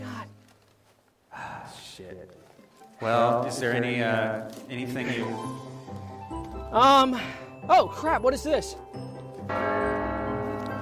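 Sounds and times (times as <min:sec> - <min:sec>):
speech: 0:02.0 - 0:05.7, 0:06.7 - 0:09.7
church bell striking with a rich metallic tone: 0:09.0 - 0:10.7.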